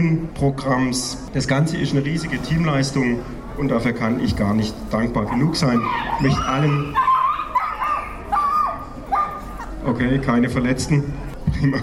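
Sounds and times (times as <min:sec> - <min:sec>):
speech: 0:00.0 - 0:07.1, 0:09.8 - 0:11.8
small dog yapping with high-pitched barks: 0:05.8 - 0:09.7.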